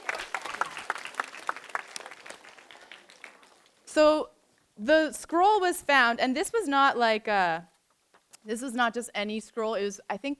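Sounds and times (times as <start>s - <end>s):
small group clapping: 0.0s - 3.9s
speech: 3.9s - 7.7s, 8.4s - 10.3s.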